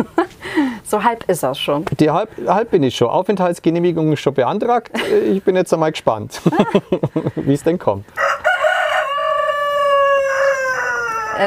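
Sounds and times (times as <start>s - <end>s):
speech: 0.9s - 8.2s
laughter: 4.9s - 5.4s, 6.3s - 7.6s
rooster crowing: 8.2s - 11.4s.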